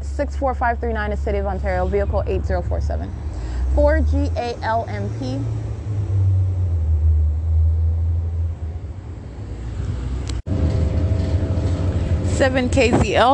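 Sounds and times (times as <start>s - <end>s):
engine rumble inside a moving city bus: 0.0s - 13.3s
speech: 0.2s - 5.6s, 12.4s - 13.3s.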